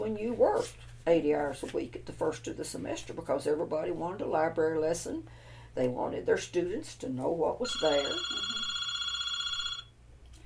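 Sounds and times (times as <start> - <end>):
faint low room hum: 0.0 - 10.4
speech: 0.1 - 8.6
fax machine ringing with a shrill electronic tone: 7.6 - 9.9.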